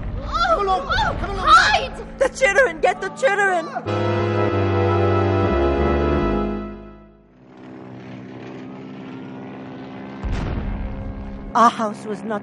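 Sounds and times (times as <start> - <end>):
speech: 0.7 - 4.6, 11.6 - 12.4
heavy propeller American bomber aircraft droning overhead: 1.6 - 12.4.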